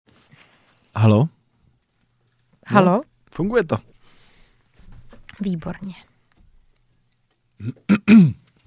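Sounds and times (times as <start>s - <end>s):
speech: 1.0s - 1.4s, 2.7s - 4.0s, 5.4s - 6.1s, 7.6s - 8.4s
person clearing throat: 7.6s - 8.5s.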